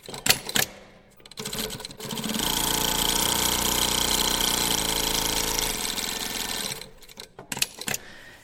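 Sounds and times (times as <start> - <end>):
sewing machine running: 1.4 - 7.1.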